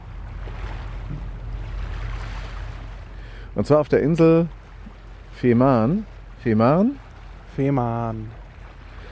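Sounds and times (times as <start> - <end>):
boat engine hum at a harbour: 0.0 - 9.0
waves lapping and wind at the harbour of Puttgarden on Fehmarn: 0.0 - 9.0
speech: 3.6 - 4.6, 5.4 - 7.0, 7.6 - 8.4.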